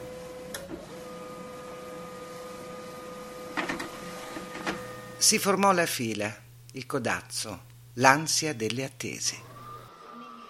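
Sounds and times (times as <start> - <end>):
printer running with mechanical whine and hum: 0.0 - 5.7, 9.1 - 10.4
speech: 5.2 - 9.5.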